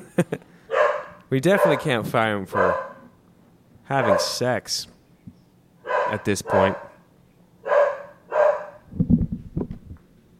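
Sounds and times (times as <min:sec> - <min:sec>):
speech: 0:00.2 - 0:00.5, 0:01.3 - 0:02.9, 0:03.9 - 0:05.0, 0:06.1 - 0:06.9
female pet dog barking: 0:00.7 - 0:03.1, 0:03.9 - 0:04.4, 0:05.8 - 0:07.0, 0:07.6 - 0:08.8
dog growling roughly: 0:05.9 - 0:07.0.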